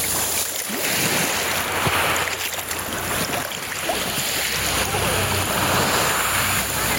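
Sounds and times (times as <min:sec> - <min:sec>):
gentle sea waves washing and lapping: 0:00.0 - 0:06.9.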